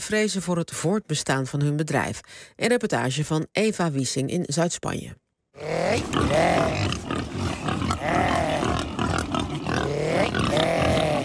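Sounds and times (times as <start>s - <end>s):
speech: 0.1s - 8.3s
Iberian black pigs grunting loudly on a farm in southern Spain: 5.6s - 11.2s.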